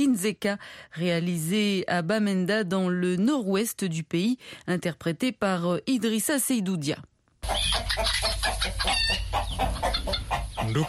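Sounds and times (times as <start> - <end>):
speech: 0.0 - 10.8
chickens clucking and squawking on a poultry farm at Santa near Bamenda: 7.4 - 10.8.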